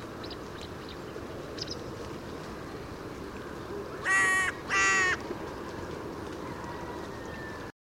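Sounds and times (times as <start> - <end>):
carrion crow (Corvus corone) cawing: 4.0 - 5.2.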